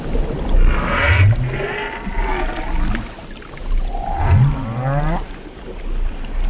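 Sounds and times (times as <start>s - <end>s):
right whale mother calling her calf underwater: 0.4s - 3.2s, 3.8s - 5.4s.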